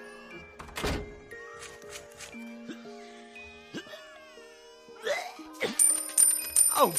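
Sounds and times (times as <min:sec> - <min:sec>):
door being shut with a heavy thunk: 0:00.6 - 0:01.2
light chimes: 0:05.8 - 0:06.9.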